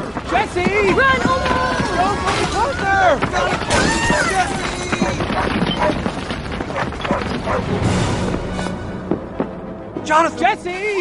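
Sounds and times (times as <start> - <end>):
rumbling and crashing noise of a slide: 0.0 - 9.2
speech: 0.3 - 4.6, 7.5 - 8.3, 10.1 - 10.9
dog barking near cliffs: 5.0 - 6.0, 6.7 - 7.7.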